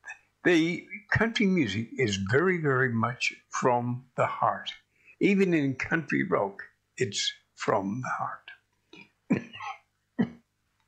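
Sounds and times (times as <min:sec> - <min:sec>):
speech: 0:00.4 - 0:08.4
short throaty coughs: 0:09.3 - 0:10.4.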